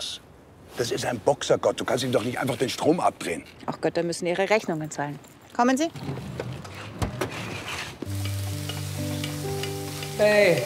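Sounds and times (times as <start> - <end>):
speech: 0.8 - 6.4, 10.2 - 10.6
utensil scraping and stirring onions in a pan: 6.7 - 10.2
onions sizzling in a hot pan: 8.0 - 10.6.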